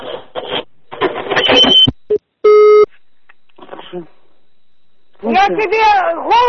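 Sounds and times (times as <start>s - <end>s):
telephone busy tone after hanging up: 0.8s - 5.7s
speech: 5.3s - 6.4s.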